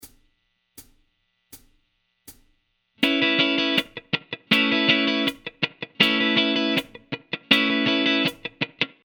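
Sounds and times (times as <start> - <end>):
guitar playing C note: 3.0 - 9.0.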